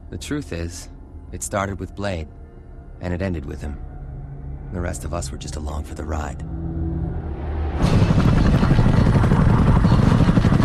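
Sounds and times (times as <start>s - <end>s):
speech: 0.1s - 2.4s, 3.0s - 3.9s, 4.7s - 6.7s
two black helicopters powering across dusty desert hills: 7.8s - 10.6s.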